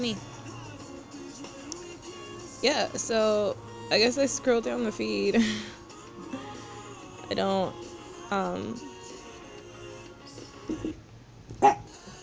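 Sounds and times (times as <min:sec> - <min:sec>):
speech: 0:00.0 - 0:00.3, 0:02.6 - 0:05.8, 0:07.3 - 0:08.9
low hum: 0:00.0 - 0:12.2
dogs barking indoors at somebody fixing the toilet: 0:11.6 - 0:11.9.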